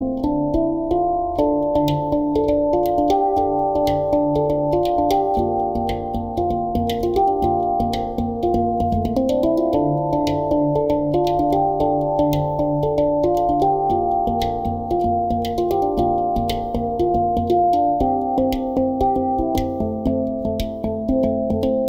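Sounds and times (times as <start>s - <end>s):
handpan notes in D minor: 0.0s - 21.8s.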